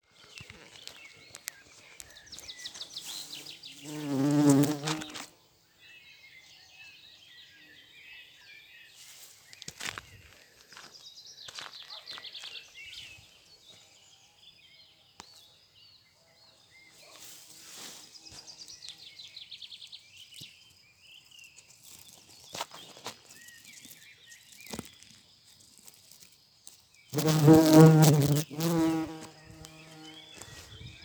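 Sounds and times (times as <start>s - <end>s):
bumblebees buzzing: 3.4s - 5.3s, 27.1s - 30.4s.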